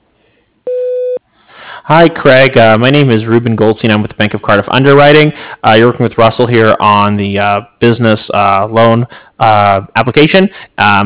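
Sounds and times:
answering machine beep: 0.7s - 1.2s
speech: 1.9s - 11.0s.

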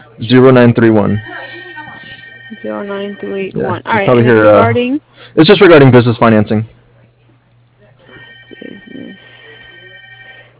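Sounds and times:
speech: 0.2s - 1.5s, 2.6s - 6.8s
telephone ringing in the background of a phone call: 1.0s - 3.6s, 8.1s - 10.5s.

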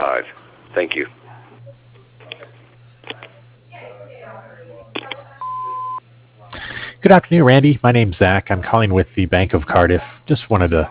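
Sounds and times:
speech: 0.0s - 1.2s, 7.0s - 10.8s
voicemail beep tone over a phone line: 5.4s - 6.0s.

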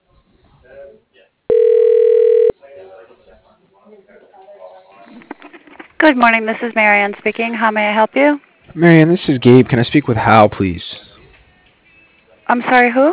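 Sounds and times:
electronic telephone ring tone as a call is transferred: 1.5s - 2.5s
speech: 6.0s - 10.9s, 12.5s - 13.1s.

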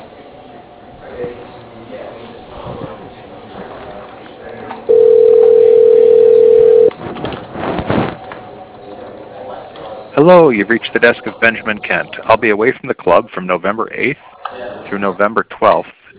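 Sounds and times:
steady telephone tone as a call is transferred to voicemail: 4.9s - 6.9s
speech: 10.2s - 16.0s.

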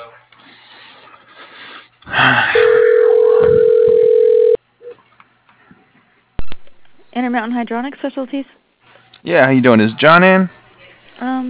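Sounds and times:
telephone ringback tone on an outgoing call: 2.6s - 4.6s
speech: 7.3s - 8.6s, 9.2s - 10.6s.

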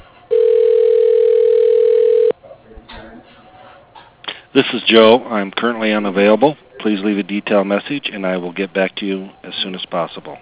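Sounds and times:
telephone tone while an extension is dialed: 0.3s - 2.3s
speech: 4.6s - 10.3s.

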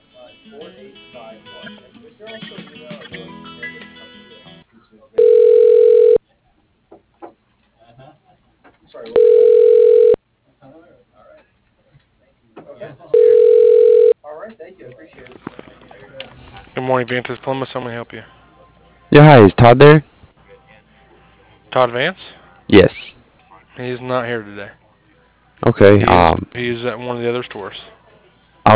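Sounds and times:
speech: 0.5s - 3.2s, 16.9s - 18.4s, 19.1s - 20.1s, 21.8s - 22.9s, 23.8s - 24.8s, 25.6s - 27.9s
telephone line ringing during automated call transfer: 5.2s - 6.2s, 9.2s - 10.2s, 13.2s - 14.2s.

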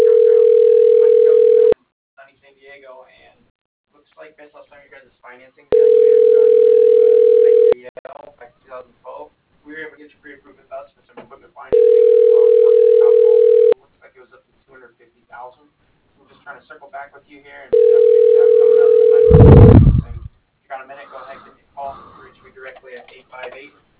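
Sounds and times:
ringback tones on an office telephone line: 0.0s - 1.8s, 5.7s - 7.8s, 11.8s - 13.8s, 17.8s - 19.8s.

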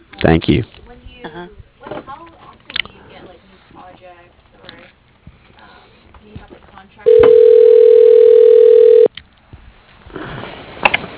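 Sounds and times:
steady telephone tone as a call is transferred to voicemail: 7.1s - 9.1s
talk over the phone line: 7.1s - 9.1s.

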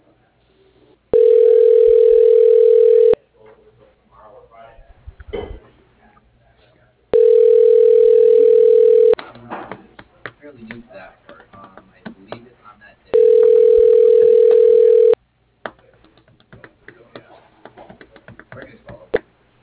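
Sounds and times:
telephone ringback tone of a call forwarded to voicemail: 1.1s - 3.2s, 7.2s - 9.2s, 13.2s - 15.2s.

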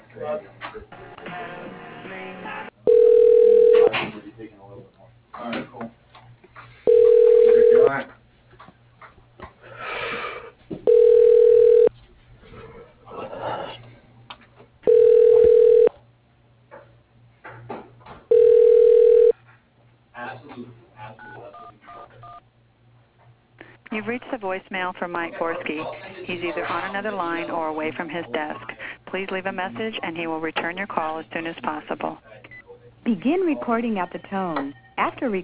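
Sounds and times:
speech: 0.2s - 2.7s, 4.0s - 6.8s, 24.6s - 32.2s, 33.1s - 35.4s
telephone ringing back while a call is transferred to an office extension: 2.9s - 3.9s, 6.9s - 7.9s, 10.9s - 11.9s, 14.9s - 15.9s, 18.3s - 19.3s.

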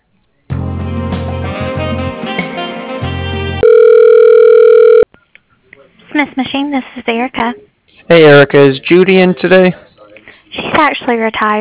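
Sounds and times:
telephone ringing tones during automated call transfer: 3.6s - 5.1s
speech: 6.2s - 9.9s, 10.8s - 11.6s.

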